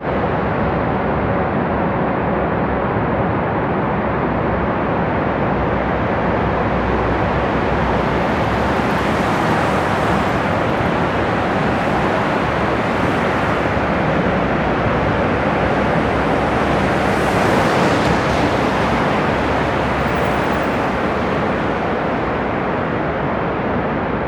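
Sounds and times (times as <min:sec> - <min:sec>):
cars passing in a tunnel: 0:00.0 - 0:24.2
street traffic: 0:04.0 - 0:24.2.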